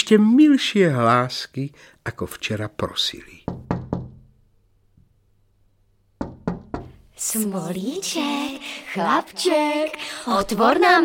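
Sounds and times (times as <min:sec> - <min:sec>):
speech: 0:00.0 - 0:03.6, 0:07.2 - 0:11.0
soft knocking on a wooden door: 0:03.4 - 0:04.4, 0:06.2 - 0:07.1.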